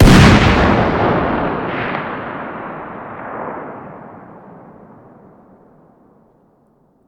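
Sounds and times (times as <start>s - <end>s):
distant 50 BMG rifle fire exterior: 0.0s - 4.7s.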